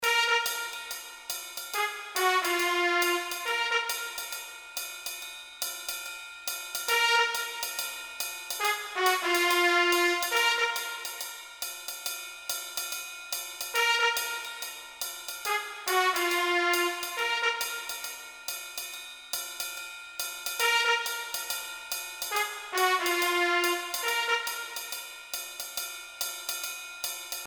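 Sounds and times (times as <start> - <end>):
orchestra with trumpet: 0.0 - 4.7, 6.9 - 11.5, 13.7 - 18.4, 20.6 - 25.2.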